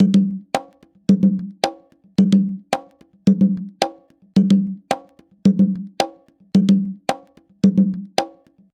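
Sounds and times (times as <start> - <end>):
latin conga loop: 0.0 - 8.7.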